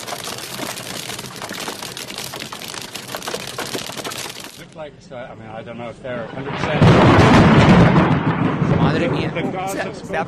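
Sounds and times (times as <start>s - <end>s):
hail clattering down: 0.0s - 4.8s
speech: 4.8s - 8.2s, 8.9s - 10.2s
loud rumbling thunderclap: 6.5s - 9.6s.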